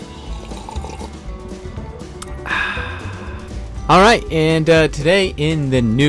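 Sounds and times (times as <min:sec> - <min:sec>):
coffee pouring into a cup: 0:00.0 - 0:01.2
speech: 0:03.9 - 0:06.0.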